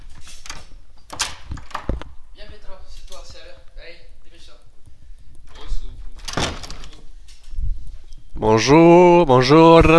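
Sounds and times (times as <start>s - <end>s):
door opening with click, rattle, scrape and thud: 0.0s - 2.2s, 5.4s - 7.6s
speech: 8.4s - 9.9s.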